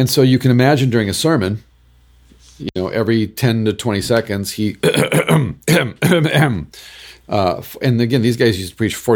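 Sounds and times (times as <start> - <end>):
speech: 0.0 - 1.7, 2.6 - 9.1
person imitating a man's nervous throat-clearing tic: 4.8 - 6.6.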